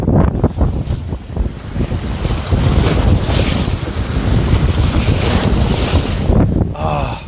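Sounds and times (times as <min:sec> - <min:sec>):
sea waves churning: 0:00.0 - 0:07.2
strong wind across the open sea buffeting the microphone: 0:00.0 - 0:07.2.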